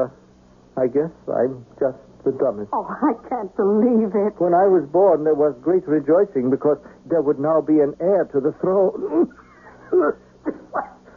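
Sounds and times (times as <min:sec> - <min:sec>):
speech: 0:00.0 - 0:00.2, 0:00.8 - 0:10.9
person coughing throatily: 0:09.9 - 0:10.2.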